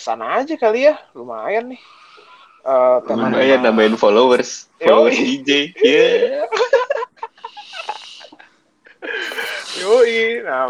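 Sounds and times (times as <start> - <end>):
speech: 0.0 - 6.8, 9.8 - 10.6
heavy raspy wheezy breathing: 1.5 - 4.8, 7.4 - 10.4
laughter: 5.8 - 8.4.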